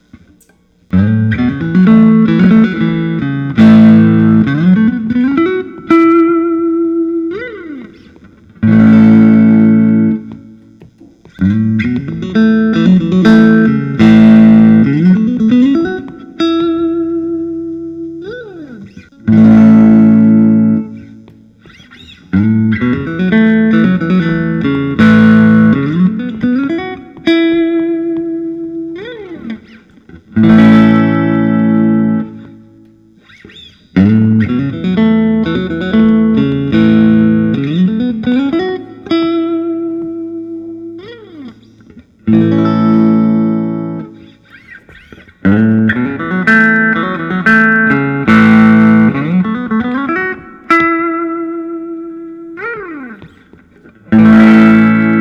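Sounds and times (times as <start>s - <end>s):
Tom Anderson Hollow T Contour guitar: 0.0s - 55.1s.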